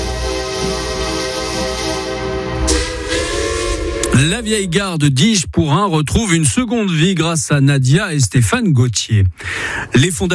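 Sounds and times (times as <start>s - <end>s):
train horn-like tones: 0.0s - 4.7s
train arriving at an old station with a rumbling roar: 0.0s - 5.8s
speech: 4.2s - 10.3s.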